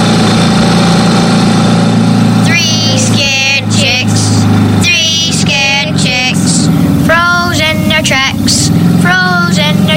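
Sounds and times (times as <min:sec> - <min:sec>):
loud ATV engine with huge tires idling: 0:00.0 - 0:09.9.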